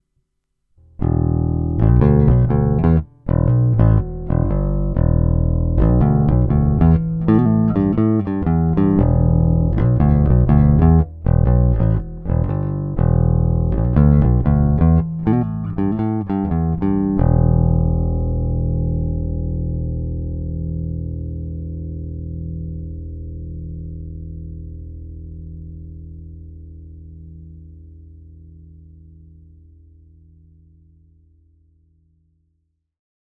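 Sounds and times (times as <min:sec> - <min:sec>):
plectrum-plucked string open tone: 0:00.8 - 0:22.8.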